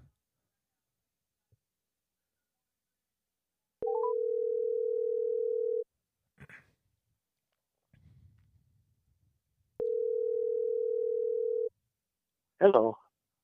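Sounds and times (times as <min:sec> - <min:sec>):
outgoing call ringback tone: 0:03.8 - 0:05.8, 0:09.8 - 0:11.7.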